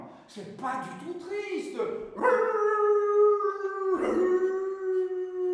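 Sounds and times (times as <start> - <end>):
speech: 0.3 - 2.7
dog howling: 2.2 - 5.5.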